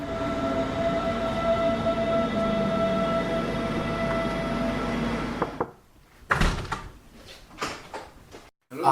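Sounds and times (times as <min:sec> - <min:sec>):
S1 S-Bahn commuter train toward Freising humming and rumbling with a tonal whine: 0:00.0 - 0:05.6.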